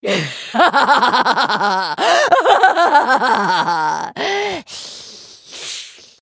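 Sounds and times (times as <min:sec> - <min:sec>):
person laughing: 0:00.1 - 0:04.4.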